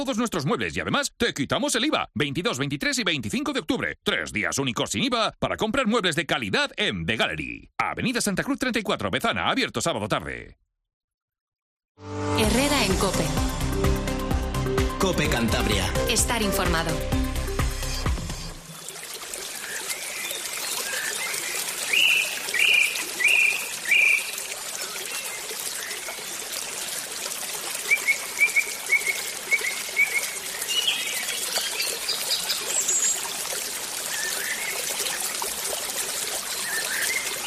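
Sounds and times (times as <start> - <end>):
speech: 0.0 - 10.6, 12.0 - 13.9, 15.0 - 17.2
babbling stream: 16.0 - 37.4
birds chirping: 17.8 - 26.5, 27.8 - 33.4, 36.4 - 37.4.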